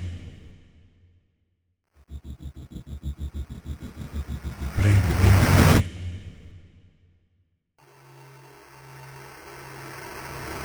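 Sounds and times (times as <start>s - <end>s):
film sound effect: 2.0s - 5.8s.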